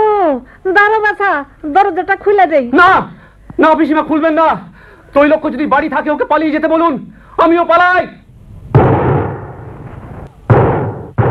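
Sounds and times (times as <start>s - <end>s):
speech: 0.6s - 8.2s
gunshots fired inside a house: 8.7s - 11.2s.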